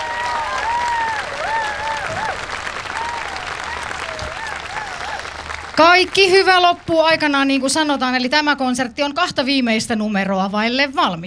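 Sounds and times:
large audience applauding an orchestra: 0.0s - 8.0s
speech: 5.8s - 11.2s.

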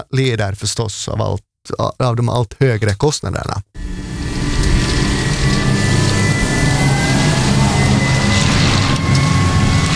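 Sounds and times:
speech: 0.0s - 4.0s
faint whining tone of electric tractor truck: 3.8s - 9.9s
heavy electric tractor truck rolling in for charging: 3.8s - 9.9s.

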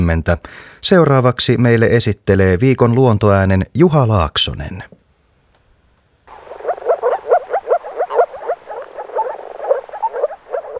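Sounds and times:
speech: 0.0s - 5.0s
dense chorus of frogs croaking: 6.2s - 10.7s.

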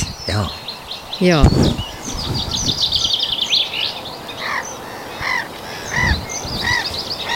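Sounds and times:
black-headed gulls calling: 0.0s - 7.3s
small birds chirping: 0.0s - 7.3s
speech: 0.3s - 0.6s, 1.2s - 1.8s.

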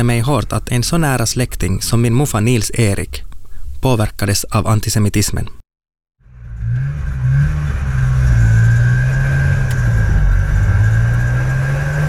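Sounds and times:
speech: 0.0s - 5.6s
motorcycle with a sidecar engine rumbling while driving: 6.2s - 12.0s.

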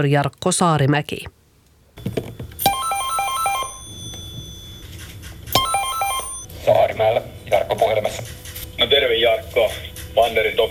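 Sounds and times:
speech: 0.0s - 1.4s, 6.6s - 10.7s
landline telephone ringing with a bright electronic trill: 2.0s - 6.5s.

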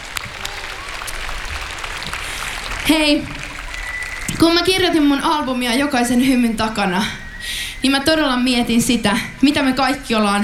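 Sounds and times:
concert audience applause: 0.0s - 7.3s
speech: 2.9s - 3.4s, 4.3s - 7.2s, 7.8s - 10.4s.

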